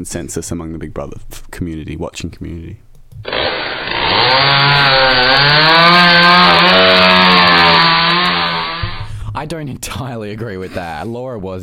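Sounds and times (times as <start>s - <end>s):
speech: 0.0s - 3.2s, 9.4s - 11.6s
chainsaw sound effect roaring: 3.2s - 9.1s.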